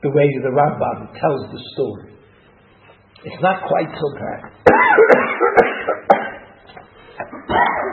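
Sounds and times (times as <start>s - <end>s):
speech: 0.0s - 2.1s, 3.2s - 6.0s, 6.7s - 7.9s
person coughing: 4.6s - 6.5s, 7.3s - 7.9s.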